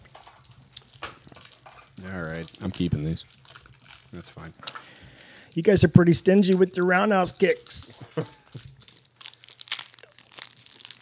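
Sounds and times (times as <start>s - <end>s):
paper wrapper of a single malt scotch caramel crinkling: 0.0s - 11.0s
speech: 2.0s - 3.4s, 4.1s - 4.8s, 5.6s - 8.4s.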